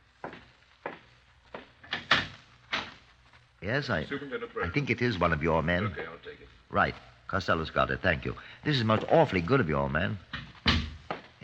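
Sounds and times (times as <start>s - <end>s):
speech: 3.6s - 10.3s
knocks and clunks of a door latch and handle: 10.4s - 11.1s.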